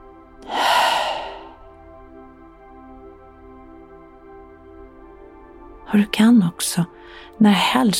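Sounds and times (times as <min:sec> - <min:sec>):
person slowly exhaling: 0:00.4 - 0:01.6
speech: 0:05.9 - 0:07.9.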